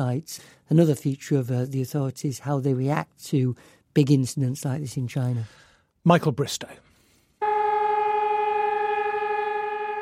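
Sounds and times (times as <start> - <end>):
speech: 0.0 - 6.9
sirens sounding for a memorial ceremony in Warsaw: 7.4 - 10.0.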